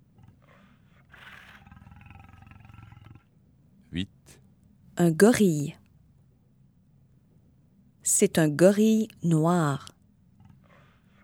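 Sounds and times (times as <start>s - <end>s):
bear growling: 0.0s - 4.4s
speech: 3.9s - 4.4s, 5.0s - 5.8s, 8.2s - 10.0s.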